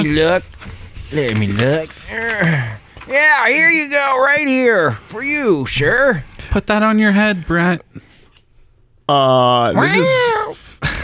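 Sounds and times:
speech: 0:00.0 - 0:08.0, 0:09.1 - 0:10.7
person imitating a cat meowing: 0:09.8 - 0:10.7
breathy noise: 0:09.8 - 0:10.8.

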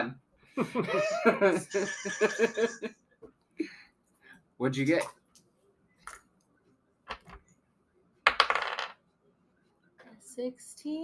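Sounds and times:
speech: 0:00.0 - 0:03.0, 0:04.6 - 0:05.2, 0:10.4 - 0:11.0
laughter: 0:00.6 - 0:02.9
dice rolling on a table: 0:07.1 - 0:07.4, 0:08.2 - 0:09.0.

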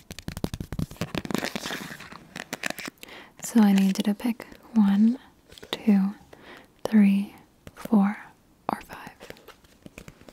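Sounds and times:
playing cards handled, counted and flicked: 0:00.0 - 0:02.9, 0:09.2 - 0:10.3
speech: 0:03.5 - 0:06.2, 0:06.9 - 0:08.2.

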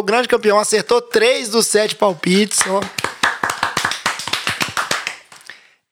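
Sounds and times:
speech: 0:00.0 - 0:03.0
short round of applause: 0:02.2 - 0:05.7.

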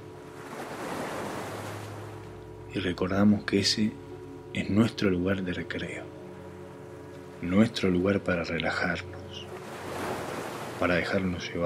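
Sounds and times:
ocean waves breaking on shore: 0:00.0 - 0:02.4, 0:06.6 - 0:11.6
faint low hum: 0:00.0 - 0:11.6
speech: 0:02.8 - 0:06.2, 0:07.4 - 0:09.5, 0:10.8 - 0:11.6.

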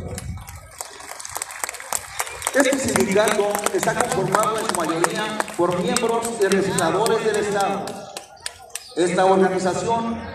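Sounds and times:
crowd applause outdoors at a parade: 0:00.0 - 0:08.9
speech: 0:02.6 - 0:08.1, 0:09.0 - 0:10.3.

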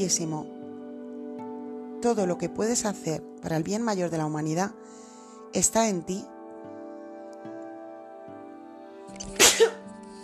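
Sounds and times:
speech: 0:00.0 - 0:00.6, 0:02.0 - 0:06.3
sharp sneeze: 0:09.2 - 0:09.8.

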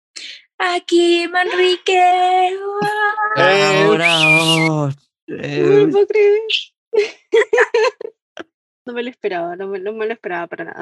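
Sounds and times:
speech: 0:00.6 - 0:08.2, 0:08.9 - 0:10.8
laughter: 0:01.5 - 0:01.8, 0:02.8 - 0:04.9, 0:07.0 - 0:08.1
person imitating cat meowing: 0:02.7 - 0:06.0.

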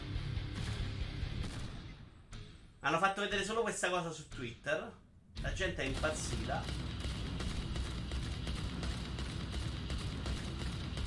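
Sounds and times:
rhythm shooting video game soundtrack: 0:00.0 - 0:11.0
gunshots in a rhythm shooting video game: 0:00.6 - 0:02.2, 0:05.6 - 0:11.0
speech: 0:02.8 - 0:06.9.

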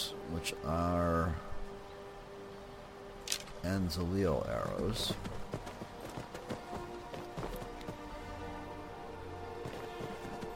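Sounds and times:
speech: 0:00.3 - 0:01.5, 0:03.6 - 0:05.7
horse hoofbeats in a video game: 0:04.4 - 0:08.3, 0:09.5 - 0:10.5.

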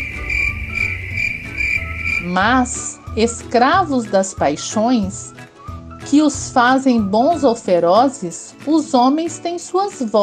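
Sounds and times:
cricket chirping: 0:00.0 - 0:02.4
speech: 0:02.2 - 0:05.4, 0:06.1 - 0:10.2.

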